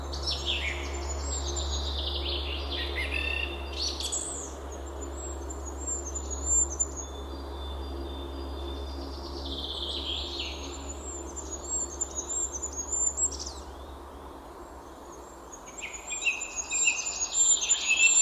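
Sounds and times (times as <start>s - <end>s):
goldcrest singing thin high-pitched phrases: 0.0s - 18.1s.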